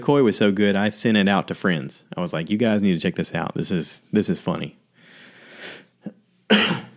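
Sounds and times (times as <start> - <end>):
speech: 0.0 - 4.8, 5.7 - 6.8
person coughing harshly: 6.0 - 6.9.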